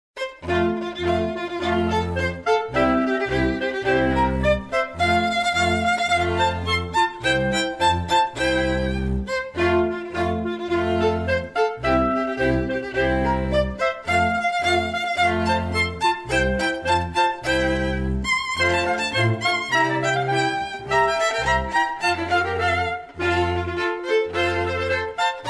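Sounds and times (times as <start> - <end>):
Danish folk music: 0.2 - 25.4.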